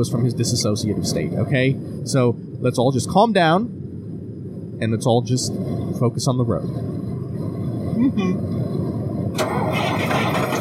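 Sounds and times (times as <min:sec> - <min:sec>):
speech: 0:00.0 - 0:03.8, 0:04.8 - 0:07.1, 0:08.0 - 0:08.7
bus engine cranking but failing to start, out of gas: 0:09.4 - 0:10.5.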